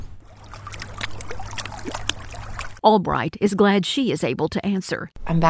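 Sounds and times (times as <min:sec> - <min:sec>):
boat engine low rumble: 0:00.2 - 0:02.8
lake water sloshing and splashing against a boat hull: 0:00.2 - 0:02.8
speech: 0:02.8 - 0:05.4.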